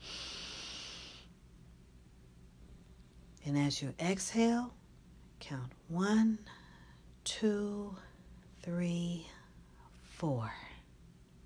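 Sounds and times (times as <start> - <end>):
deep breath drawn in through the nose during breathing meditation: 0.0 - 1.3
speech: 3.4 - 4.8, 5.4 - 6.6, 7.2 - 9.4, 10.2 - 10.7.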